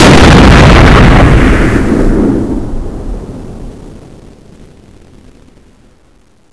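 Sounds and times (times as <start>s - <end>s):
tank firing: 0.0s - 3.9s.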